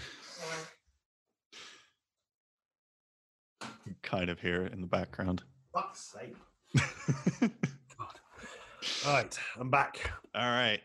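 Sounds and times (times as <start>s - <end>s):
person blowing nose: 0.0s - 0.7s
speech: 4.1s - 8.2s, 8.8s - 10.8s
laughter: 6.7s - 9.3s.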